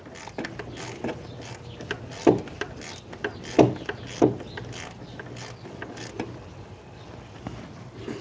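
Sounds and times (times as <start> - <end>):
ratchet clicking while loosening a belt tensioner bolt: 0.0 - 6.3
mechanical knocks from removing a belt tensioner bolt: 0.3 - 6.3.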